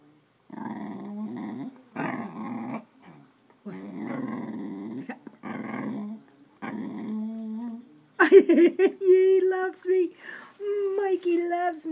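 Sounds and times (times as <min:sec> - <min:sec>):
male dog growling: 0:00.5 - 0:07.9
speech: 0:08.3 - 0:10.4, 0:11.1 - 0:11.9.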